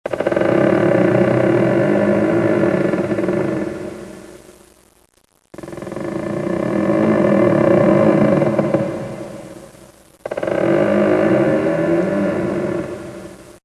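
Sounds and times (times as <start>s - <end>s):
door creaking: 0.1s - 3.6s, 5.6s - 9.4s, 10.2s - 13.1s.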